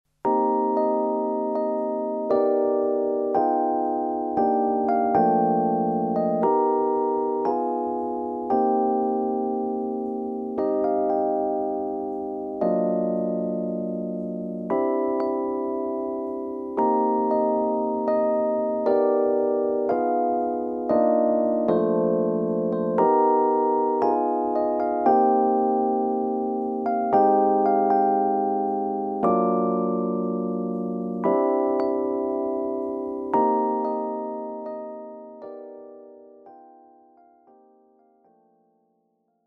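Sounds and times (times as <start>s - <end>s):
Fender Rhodes Mark 1b Stage electric piano: 0.1s - 39.4s.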